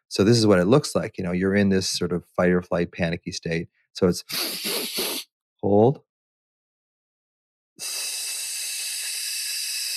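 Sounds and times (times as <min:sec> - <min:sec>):
speech: 0:00.1 - 0:05.0, 0:05.6 - 0:06.1, 0:07.8 - 0:08.1
breath exhaled through the teeth in a calming breathing exercise: 0:04.3 - 0:05.2, 0:07.8 - 0:09.9.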